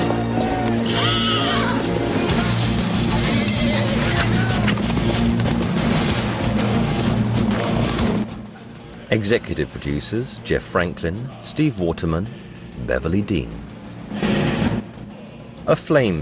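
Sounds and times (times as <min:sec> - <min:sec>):
horses' hooves clattering as horsemen ride away: 0:00.0 - 0:11.0
loud dense music: 0:00.0 - 0:15.8
horse whinnying: 0:00.3 - 0:01.9
speech: 0:09.2 - 0:14.3, 0:15.7 - 0:16.1.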